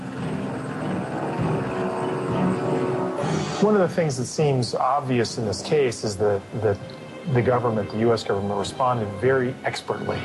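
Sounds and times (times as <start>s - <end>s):
helicopter rotors and engines: 0.0s - 3.6s
speech: 3.6s - 10.2s.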